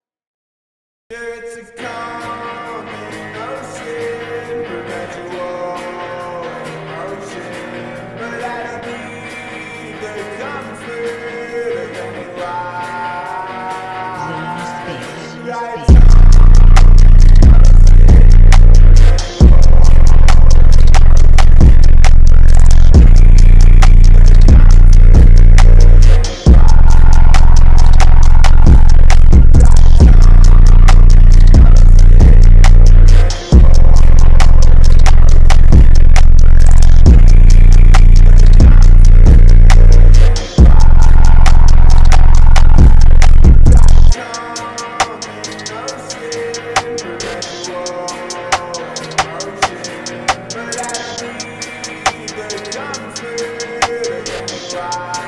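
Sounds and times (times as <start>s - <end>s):
bass-boosted beats: 15.9s - 44.2s.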